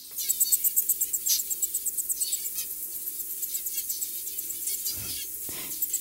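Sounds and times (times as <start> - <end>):
zebra finches singing: 0.0 - 5.9
zebra finch sweeping calls: 4.6 - 5.9.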